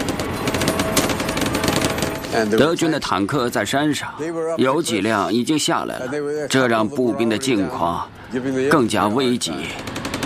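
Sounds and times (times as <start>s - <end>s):
machine gun fire in a war video game: 0.0s - 2.6s, 9.6s - 10.2s
speech: 2.3s - 10.0s.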